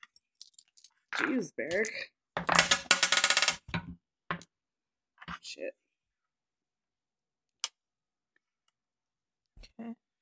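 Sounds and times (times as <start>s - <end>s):
speech: 1.2s - 2.5s, 5.5s - 5.8s, 9.8s - 10.0s
five six-sided dice rattling across a hard surface: 2.4s - 3.8s.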